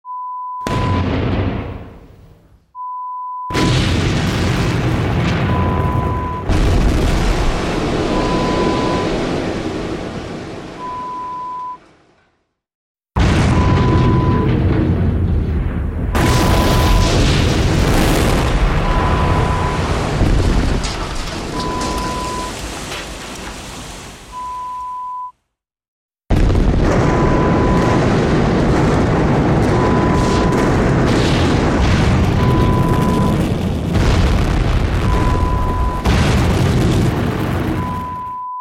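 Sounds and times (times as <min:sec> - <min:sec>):
explosion: 0:00.6 - 0:02.6, 0:03.5 - 0:11.2, 0:13.2 - 0:24.5, 0:26.3 - 0:38.4.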